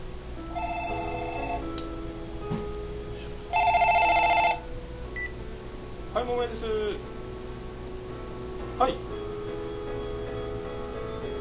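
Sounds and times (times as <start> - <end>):
quiet hum: 0.0 - 11.3
telephone ringing with an electronic trill: 0.6 - 1.8, 3.5 - 5.3
speech: 8.8 - 9.0.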